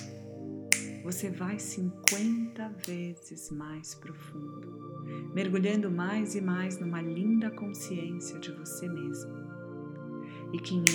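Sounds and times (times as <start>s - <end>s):
crisp finger snap: 0.0s - 3.1s
steady soft droning musical background: 0.0s - 10.9s
speech: 1.0s - 9.4s, 10.5s - 10.9s.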